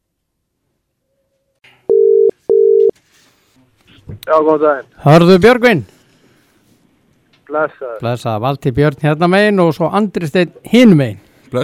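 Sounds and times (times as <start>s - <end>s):
telephone line tone on an outgoing call to Russia: 1.9s - 2.9s
speech: 4.3s - 5.9s, 7.5s - 11.6s.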